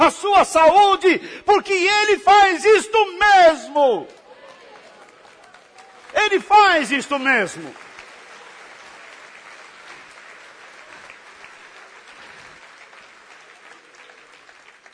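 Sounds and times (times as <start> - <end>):
speech: 0.0 - 4.2, 6.2 - 7.8
congregation applauding: 4.0 - 14.9.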